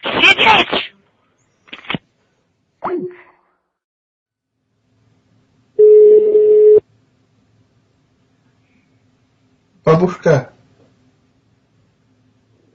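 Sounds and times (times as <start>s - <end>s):
telephone electronic ring tone for an incoming call: 5.8s - 6.8s
speech: 9.9s - 10.6s.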